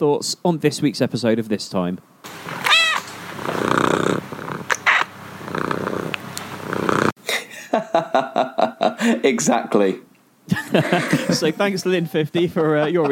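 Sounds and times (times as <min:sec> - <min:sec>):
speech: 0:00.0 - 0:02.6, 0:09.2 - 0:10.0, 0:10.7 - 0:13.1
cat meowing: 0:02.6 - 0:03.1
cat purring in rumbling waves: 0:03.4 - 0:04.8, 0:05.4 - 0:07.2
laughter: 0:07.3 - 0:09.2, 0:10.5 - 0:13.1.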